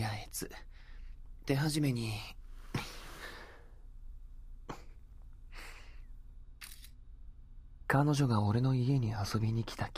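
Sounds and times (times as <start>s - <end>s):
faint steady low hum: 0.0s - 9.9s
speech: 0.4s - 0.7s, 1.5s - 2.4s, 7.9s - 9.9s
camera shutter clicks as a selfie is taken: 6.6s - 7.0s.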